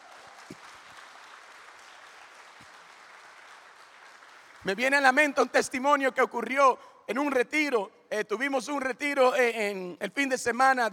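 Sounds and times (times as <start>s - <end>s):
audience applause at a worship gathering: 0.0s - 4.7s
speech: 4.6s - 10.9s.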